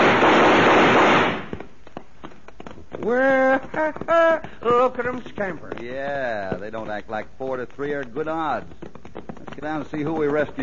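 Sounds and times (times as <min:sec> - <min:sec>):
burst of gunfire with shots fired over people's heads: 0:00.0 - 0:01.6
speech: 0:03.1 - 0:08.9, 0:09.6 - 0:10.6.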